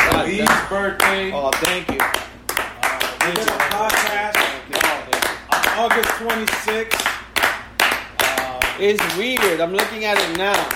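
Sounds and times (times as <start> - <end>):
sharp hand claps: 0.0 - 10.7
speech: 0.4 - 2.3, 3.2 - 4.2, 5.8 - 7.1, 8.8 - 10.7.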